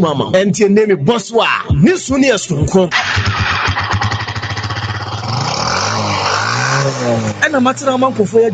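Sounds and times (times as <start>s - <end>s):
speech: 0.0s - 3.8s, 6.8s - 8.5s
motorcycle engine idling and revving: 2.9s - 8.5s.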